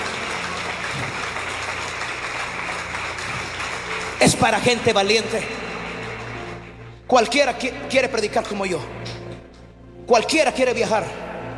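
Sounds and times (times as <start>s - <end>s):
crowd clapping: 0.0s - 7.7s
speech: 4.2s - 5.7s, 7.1s - 9.2s, 10.1s - 11.2s.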